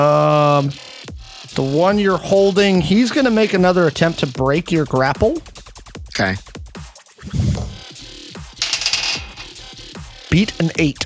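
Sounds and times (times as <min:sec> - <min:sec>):
speech: 0:00.0 - 0:00.8, 0:01.6 - 0:05.5, 0:06.2 - 0:06.5, 0:10.3 - 0:11.0
dice rolling across a hard tabletop in a game: 0:08.6 - 0:09.7.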